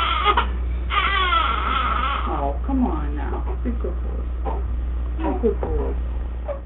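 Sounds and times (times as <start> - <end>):
baby crying in wavering rising wails: 0.0 - 2.4
steady low hum: 0.0 - 6.6.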